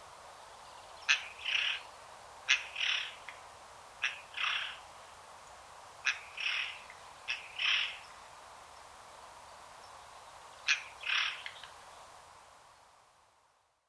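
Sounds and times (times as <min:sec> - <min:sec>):
faint hiss: 0:00.0 - 0:13.8
Eurasian Jay Garrulus glandarius paired calls of crisp click and harsh rasp: 0:01.1 - 0:01.8, 0:02.5 - 0:03.4, 0:04.0 - 0:04.8, 0:06.0 - 0:08.0, 0:10.7 - 0:11.7.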